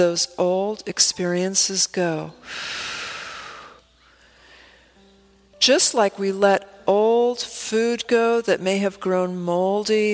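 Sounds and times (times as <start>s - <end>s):
speech: 0.0s - 3.0s, 5.6s - 10.1s
deep breath: 2.4s - 5.0s.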